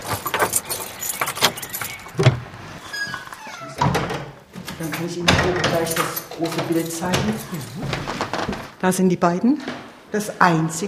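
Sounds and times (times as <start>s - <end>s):
keys jangling and clinking: 0.0s - 2.3s, 4.6s - 7.8s
door being handled: 0.0s - 8.8s
speech: 5.0s - 8.2s, 8.8s - 10.8s.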